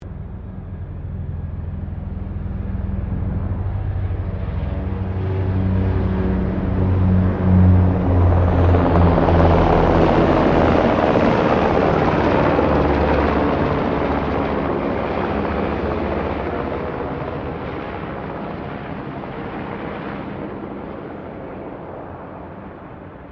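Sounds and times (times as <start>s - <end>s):
1990 Sikorsky UH-60 Black Hawk helicopter passing: 0.0s - 23.2s.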